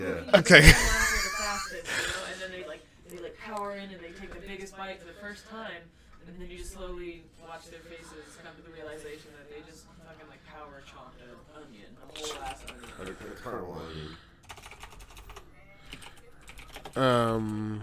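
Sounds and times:
speech: 0:00.0 - 0:01.0, 0:04.7 - 0:14.3, 0:17.0 - 0:17.8
laughter: 0:00.4 - 0:02.4
rapid clacky typing on a mechanical keyboard: 0:12.2 - 0:13.2, 0:14.4 - 0:17.1.

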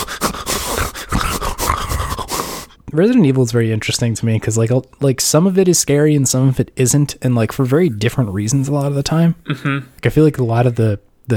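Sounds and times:
video game creature heavy raspy breathing: 0:00.0 - 0:02.8
speech: 0:02.9 - 0:11.3.

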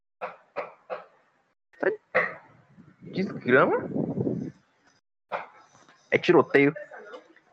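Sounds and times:
dog barking: 0:00.2 - 0:01.1, 0:05.3 - 0:05.6
speech: 0:01.8 - 0:02.0, 0:03.1 - 0:04.5, 0:06.1 - 0:06.9.

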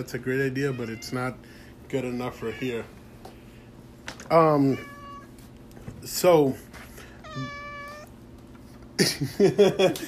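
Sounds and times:
speech: 0:00.0 - 0:03.0, 0:04.3 - 0:04.9, 0:06.0 - 0:06.8, 0:07.4 - 0:07.6, 0:09.0 - 0:10.0
cat meowing for attention: 0:00.6 - 0:01.3, 0:02.2 - 0:03.0, 0:04.5 - 0:05.4, 0:07.2 - 0:08.2.

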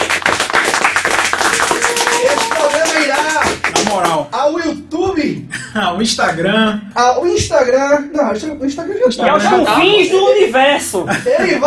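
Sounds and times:
small group applauding: 0:00.0 - 0:04.3
person cheering: 0:01.5 - 0:03.4
speech: 0:04.0 - 0:11.6
laughter: 0:10.9 - 0:11.6.

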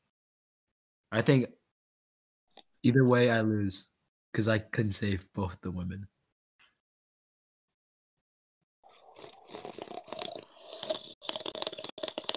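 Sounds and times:
speech: 0:01.1 - 0:01.6, 0:02.8 - 0:06.1
loud slurping sips of a drink: 0:08.8 - 0:12.3.

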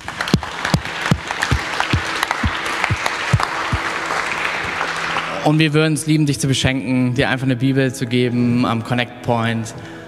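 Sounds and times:
audience applause: 0:00.0 - 0:05.7
speech: 0:05.4 - 0:10.0.

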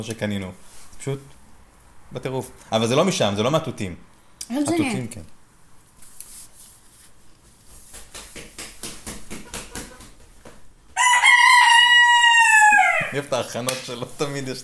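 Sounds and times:
speech: 0:00.0 - 0:01.4, 0:02.1 - 0:05.4, 0:13.2 - 0:14.6
rooster crowing: 0:11.0 - 0:13.3.

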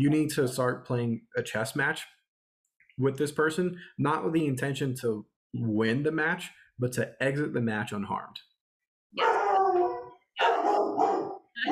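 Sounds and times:
speech: 0:00.0 - 0:02.2, 0:03.0 - 0:08.5, 0:09.1 - 0:09.4
dogs barking in almost howling bursts: 0:09.2 - 0:11.7.

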